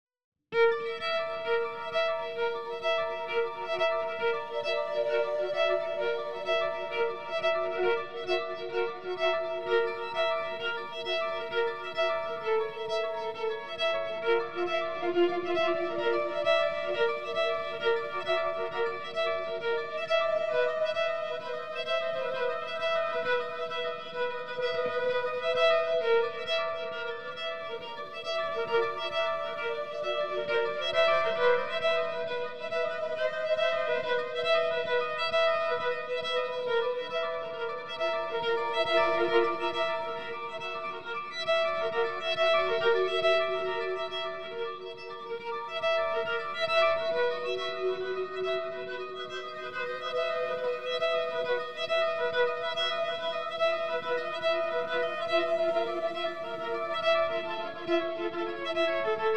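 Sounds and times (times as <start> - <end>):
bowed rhythm: 1.4 - 59.3.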